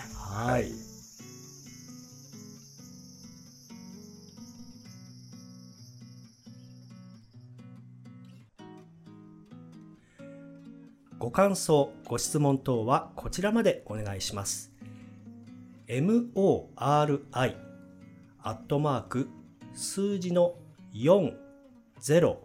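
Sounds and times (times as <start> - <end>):
cicadas droning outside a thin window: 0.0 - 8.4, 13.3 - 20.8
soft music: 0.0 - 22.4
speech: 0.4 - 0.9, 11.2 - 14.7, 15.9 - 17.7, 18.4 - 21.4, 22.0 - 22.4.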